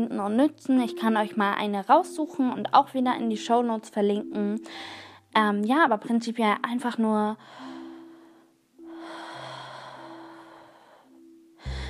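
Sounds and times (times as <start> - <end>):
speech: 0.0 - 7.7
slow deliberate deep breath in and out: 4.7 - 5.3, 7.4 - 11.8.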